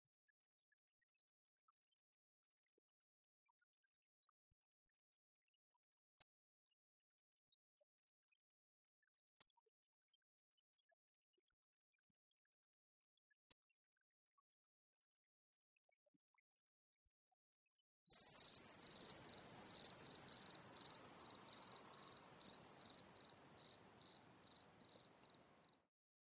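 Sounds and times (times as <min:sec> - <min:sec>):
two crickets chirping: 0:18.2 - 0:25.8.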